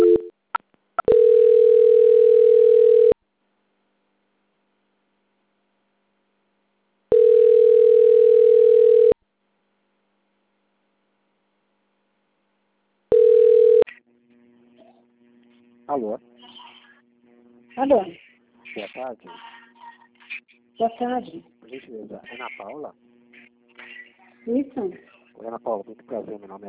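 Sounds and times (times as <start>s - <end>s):
telephone line tone during a call transfer: 0.0s - 0.3s, 1.0s - 3.2s, 7.1s - 9.2s, 13.1s - 13.9s
speech: 17.8s - 18.2s, 18.8s - 19.6s, 20.8s - 23.0s, 24.4s - 26.6s.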